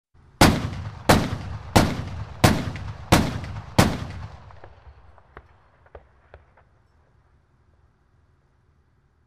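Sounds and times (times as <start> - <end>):
tank cannon firing: 0.4 - 6.6.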